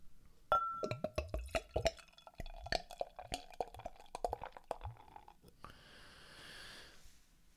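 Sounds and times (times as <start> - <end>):
glass clinking: 0.5 - 5.4
beer glugging from a bottle into a glass: 0.5 - 5.5
fine-pored white beer foam fizzing: 1.0 - 5.4.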